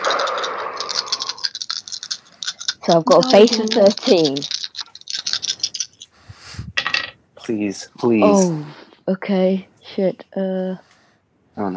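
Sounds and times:
four dice shaking and clattering: 0.0s - 6.1s
speech: 2.9s - 4.5s, 7.5s - 10.9s, 11.6s - 11.7s.

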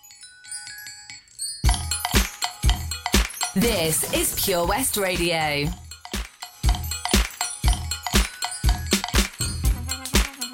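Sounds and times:
jingling bells opening a dance track: 0.0s - 10.5s
dance track with heavy thumping beats: 1.7s - 10.5s
speech: 3.6s - 5.8s.

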